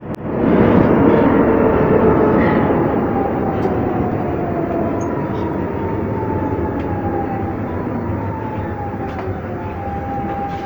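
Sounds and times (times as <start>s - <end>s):
train arriving: 0.3s - 10.6s.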